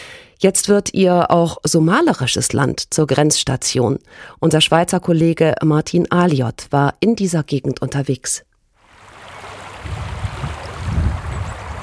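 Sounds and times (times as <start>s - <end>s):
speech: 0.4s - 8.5s
small river babbling: 8.8s - 11.8s
low gusty rumble: 9.1s - 11.8s.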